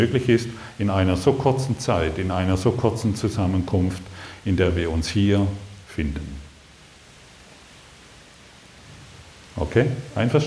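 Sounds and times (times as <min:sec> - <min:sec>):
speech: 0:00.0 - 0:06.4, 0:09.6 - 0:10.4
steady rain falling: 0:00.0 - 0:10.4.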